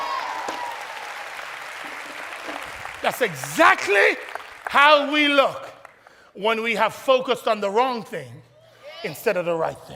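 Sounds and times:
crowd applauding: 0:00.0 - 0:06.3
speech: 0:03.0 - 0:05.7, 0:06.4 - 0:08.4, 0:09.0 - 0:09.9.

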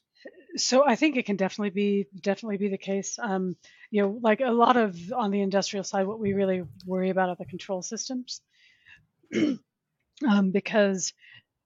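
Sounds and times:
speech: 0:00.2 - 0:08.5, 0:09.3 - 0:11.3
rasping voiced throat clearing: 0:09.3 - 0:09.6
short sharp cough: 0:09.3 - 0:09.7.

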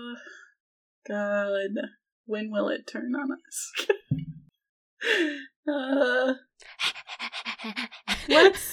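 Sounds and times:
speech: 0:01.1 - 0:04.1, 0:05.0 - 0:07.0, 0:07.6 - 0:08.7
person mimicking a dog panting: 0:06.6 - 0:08.7.

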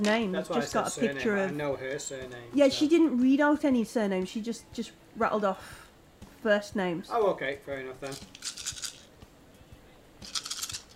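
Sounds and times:
speech: 0:00.0 - 0:05.8, 0:06.4 - 0:08.7
dice clattering and tumbling across a table: 0:08.1 - 0:09.1, 0:10.2 - 0:10.9.

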